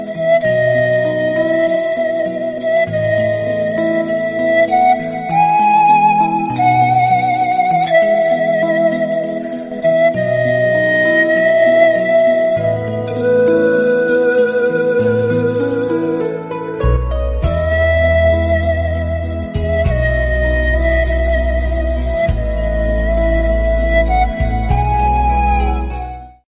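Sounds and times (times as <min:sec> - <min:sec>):
sweet and soft instrumental music: 0:00.0 - 0:26.4.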